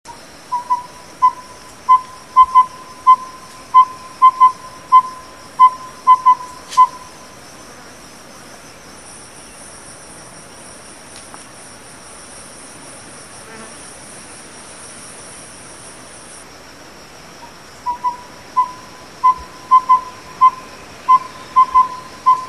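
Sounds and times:
Glaucidium brodiei: 0:00.5 - 0:07.1, 0:17.9 - 0:22.4.

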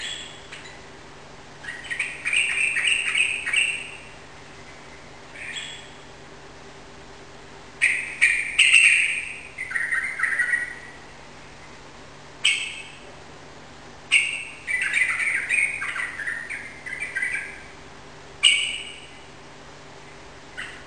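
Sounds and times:
faint low hum: 0:00.0 - 0:20.8
yellow-vented bulbul ropel song indoors in a room: 0:01.6 - 0:06.1, 0:07.8 - 0:11.8, 0:12.4 - 0:13.0, 0:14.1 - 0:17.8, 0:18.4 - 0:19.3.

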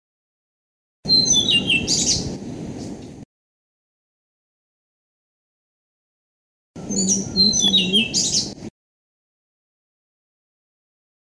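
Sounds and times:
blue-throated flycatcher falling whistled song: 0:01.1 - 0:02.2, 0:06.8 - 0:08.5
speech: 0:06.9 - 0:08.7.

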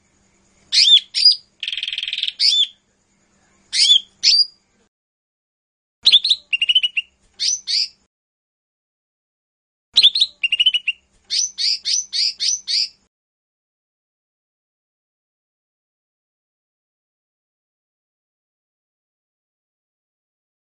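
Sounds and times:
leafbird song with high notes, buzzy rattle and whistled slurs: 0:00.7 - 0:02.8, 0:03.7 - 0:04.6, 0:06.0 - 0:08.0, 0:10.0 - 0:13.0.

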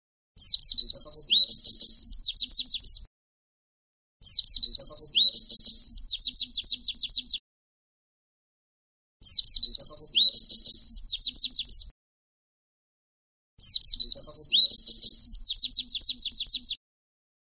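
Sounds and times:
pleci bird song for masteran training: 0:00.4 - 0:03.1, 0:04.2 - 0:07.4, 0:09.2 - 0:11.9, 0:13.6 - 0:16.8.

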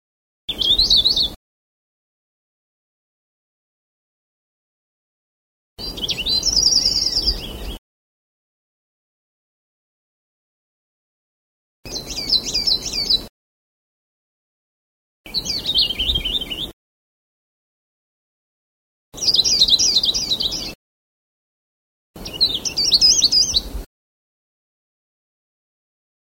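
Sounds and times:
Sulawesi cikrak bird chirping: 0:00.5 - 0:01.4, 0:05.8 - 0:07.8, 0:11.9 - 0:13.3, 0:15.3 - 0:16.8, 0:19.2 - 0:20.8, 0:22.2 - 0:23.9.

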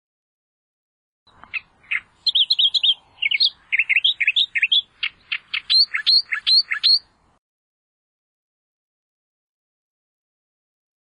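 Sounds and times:
Australian reed warbler chatter: 0:01.3 - 0:07.1.

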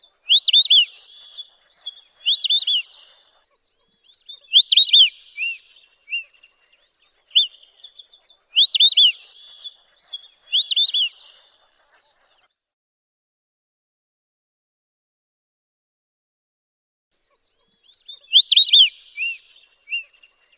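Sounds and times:
white-faced whistling duck three-note whistled calls: 0:00.2 - 0:03.1, 0:04.4 - 0:06.4, 0:08.5 - 0:11.4, 0:18.3 - 0:20.2.

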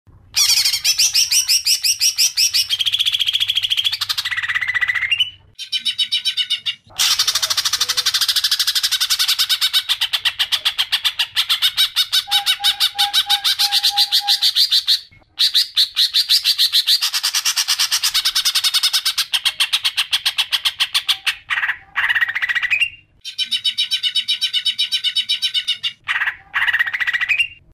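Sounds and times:
cucak hijau singing with tengkek song fill: 0:00.4 - 0:27.6.

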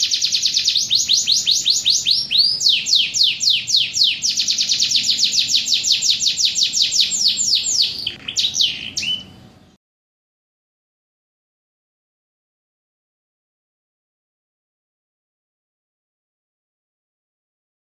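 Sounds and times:
domestic canary singing downslurred whistles in kapal oleng style: 0:00.0 - 0:09.8.

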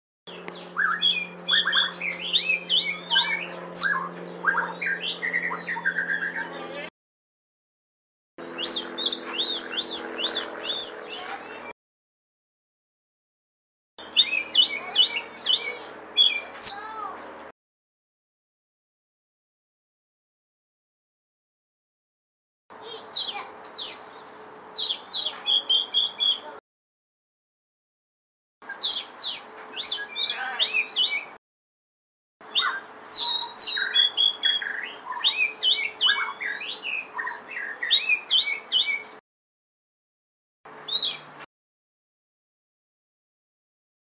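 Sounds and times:
kacer lutung cebu bird singing: 0:00.3 - 0:06.9, 0:08.4 - 0:11.7, 0:14.0 - 0:17.4, 0:22.8 - 0:26.6, 0:28.6 - 0:31.4, 0:32.4 - 0:39.2, 0:40.8 - 0:41.4.

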